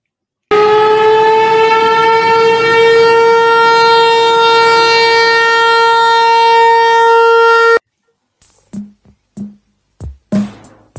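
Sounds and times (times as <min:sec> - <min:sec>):
civil defense siren blaring a steady tone: 0:00.5 - 0:07.8.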